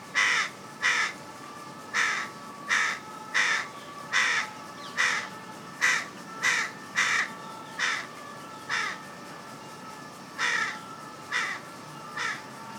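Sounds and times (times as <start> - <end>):
carrion crow rasping caws: 0.2 - 1.2, 2.0 - 8.0, 8.7 - 9.0, 10.4 - 11.6, 12.2 - 12.5.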